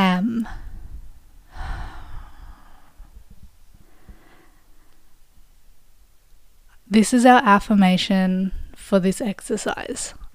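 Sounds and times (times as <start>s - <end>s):
speech: 0.4s - 0.7s, 6.9s - 10.2s
deep breath in and out: 0.5s - 5.2s.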